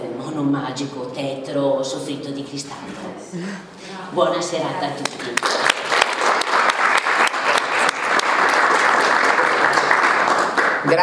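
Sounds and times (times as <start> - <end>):
speech: 0.4 - 5.7, 10.8 - 11.0
audience applause for an evening's guest: 5.2 - 11.0.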